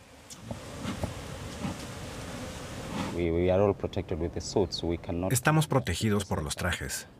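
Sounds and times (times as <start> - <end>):
honey bees buzzing around beekeepers' hives in a mangrove forest: 0.2 - 3.2
speech: 3.2 - 7.1.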